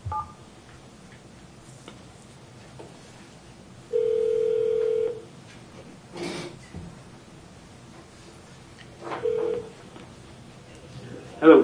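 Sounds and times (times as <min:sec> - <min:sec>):
faint room noise: 0:00.0 - 0:11.6
telephone ringback tone on speaker: 0:03.9 - 0:05.2, 0:09.2 - 0:09.7.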